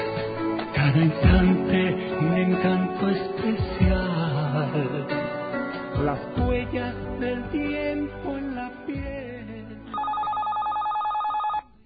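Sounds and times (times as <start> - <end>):
speech: 0.9 - 5.3, 6.0 - 9.3
telephone ringing with a fast electronic trill: 9.9 - 11.7.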